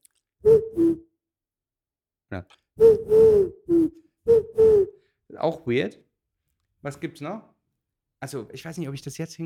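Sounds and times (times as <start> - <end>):
speech: 2.3 - 4.4, 5.4 - 6.0, 6.8 - 7.5, 8.2 - 9.4
person imitating owl hoots: 2.8 - 5.0.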